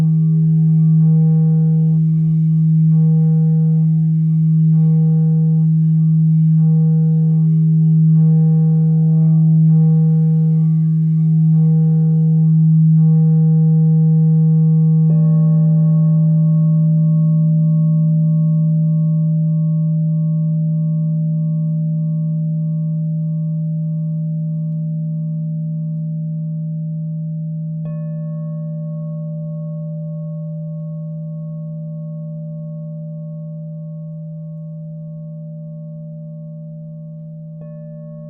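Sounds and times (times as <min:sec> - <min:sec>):
crystal singing bowl humming: 0:00.0 - 0:38.2.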